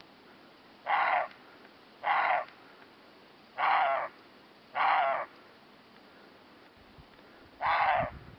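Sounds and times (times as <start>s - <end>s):
roe deer giving rough raspy barks: 0.8s - 1.4s, 2.0s - 2.5s, 3.6s - 4.1s, 4.8s - 5.3s, 7.6s - 8.1s.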